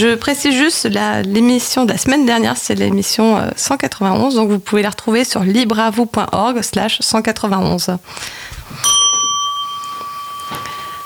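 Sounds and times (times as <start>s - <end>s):
speech: 0.0s - 9.0s
doorbell chime: 8.8s - 11.0s.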